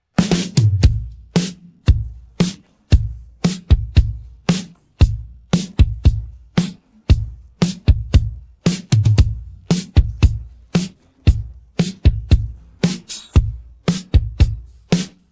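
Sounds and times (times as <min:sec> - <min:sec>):
drum pattern: 0:00.2 - 0:15.3.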